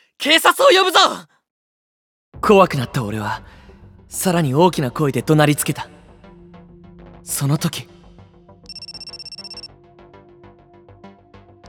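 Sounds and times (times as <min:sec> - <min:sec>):
speech: 0:00.2 - 0:01.4, 0:02.4 - 0:06.0, 0:07.2 - 0:07.9
busy music: 0:02.4 - 0:11.6
mobile phone ringing in a trouser pocket: 0:08.7 - 0:09.8.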